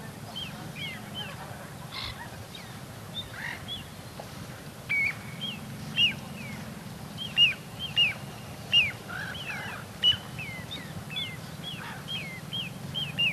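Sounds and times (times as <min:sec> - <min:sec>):
low background noise: 0:00.0 - 0:13.3
little ringed plover calling with thin falling whistles: 0:04.9 - 0:06.2, 0:07.2 - 0:13.3.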